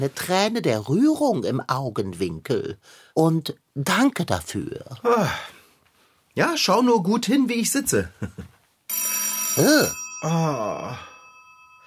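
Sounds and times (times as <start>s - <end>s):
speech: 0.0s - 5.6s, 6.4s - 11.1s
telephone ringing: 8.9s - 11.8s.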